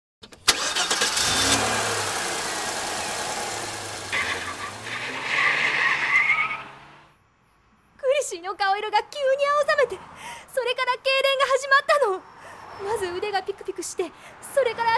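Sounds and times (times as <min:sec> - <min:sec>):
car engine starting and revving hard at high speed: 0:00.5 - 0:07.1
car tires squealing: 0:01.2 - 0:07.1
speech: 0:08.5 - 0:14.9.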